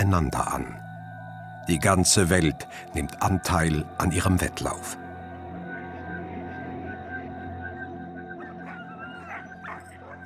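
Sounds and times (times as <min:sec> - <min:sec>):
speech: 0:00.1 - 0:00.8, 0:01.6 - 0:05.0
husky sled dogs howling and yelping: 0:05.6 - 0:10.2.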